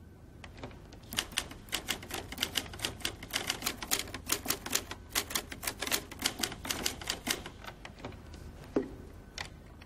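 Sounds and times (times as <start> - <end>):
old typewriter keys clacking: 1.0 - 8.2.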